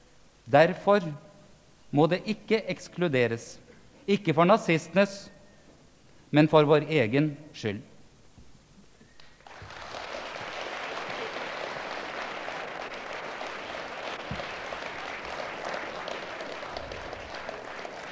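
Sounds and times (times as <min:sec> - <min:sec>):
speech: 0:00.5 - 0:01.3, 0:01.9 - 0:05.4, 0:06.3 - 0:07.9
part of an audience applauding a speech: 0:09.4 - 0:18.0.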